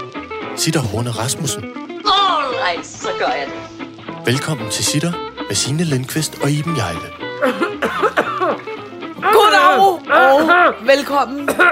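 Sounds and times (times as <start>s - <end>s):
speech: 0.6s - 11.6s
person coughing: 7.4s - 8.6s, 11.4s - 11.6s.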